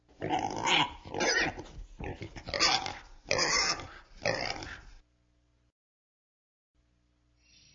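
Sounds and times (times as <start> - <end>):
pigs oinking: 0.2 - 5.0.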